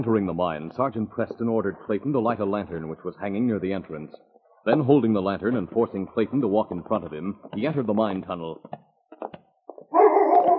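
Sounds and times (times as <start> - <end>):
speech: 0.0 - 8.9
dog barking: 9.9 - 10.5.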